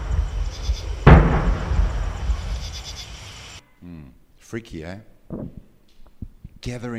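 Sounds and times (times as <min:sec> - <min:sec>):
cannon boom: 0:00.0 - 0:03.0
speech: 0:04.5 - 0:05.7, 0:06.6 - 0:06.9.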